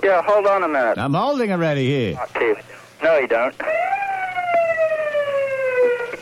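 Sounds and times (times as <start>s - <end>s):
speech: 0.0s - 3.9s
police siren wailing: 3.6s - 6.2s.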